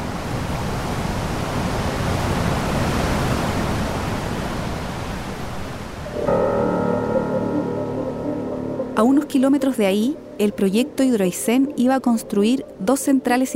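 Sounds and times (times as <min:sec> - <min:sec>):
roar of rushing water at river confluence: 0:00.0 - 0:07.0
steady tonal hum: 0:06.1 - 0:13.5
speech: 0:09.0 - 0:13.5.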